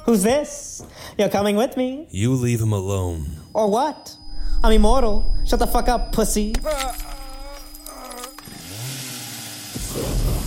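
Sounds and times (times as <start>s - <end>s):
speech: 0.1s - 7.0s
chainsaw engine revving: 8.2s - 10.4s.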